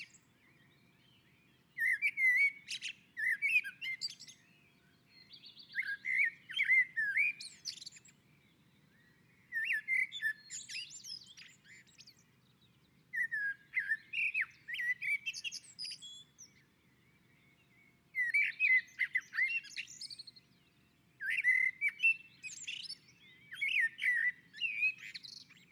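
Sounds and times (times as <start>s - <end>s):
common blackbird singing on a roof: 1.8s - 4.5s, 5.2s - 8.2s, 9.5s - 12.2s, 13.1s - 16.7s, 18.2s - 20.4s, 21.2s - 25.7s.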